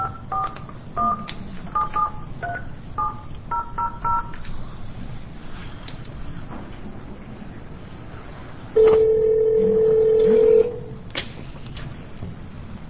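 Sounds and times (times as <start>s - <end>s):
faint noise: 0.0s - 12.8s
touch-tone telephone keypad beeps dialing out: 1.8s - 4.3s.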